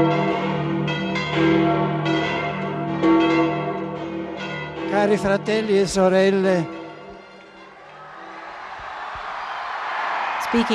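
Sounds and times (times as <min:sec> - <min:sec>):
church bells pealing festively: 0:00.0 - 0:08.4
speech: 0:05.0 - 0:06.8, 0:10.5 - 0:10.7.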